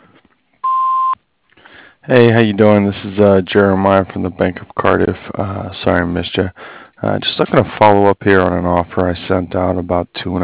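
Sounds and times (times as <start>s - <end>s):
answering machine beep: 0.6s - 1.2s
speech: 2.1s - 10.4s.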